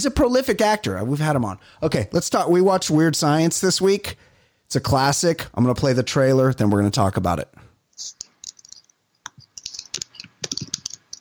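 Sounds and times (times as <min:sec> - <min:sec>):
speech: 0:00.0 - 0:08.2
typing on a computer keyboard: 0:08.2 - 0:11.1.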